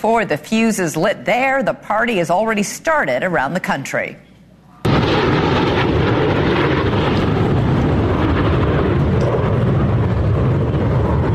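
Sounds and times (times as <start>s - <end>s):
speech: 0.0s - 4.3s
military jet squadron roaring overhead: 4.8s - 11.3s.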